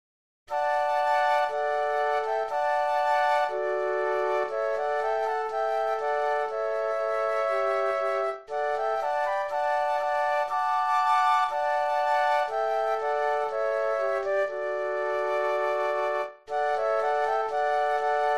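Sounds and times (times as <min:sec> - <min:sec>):
flute trio playing: 0:00.5 - 0:18.3.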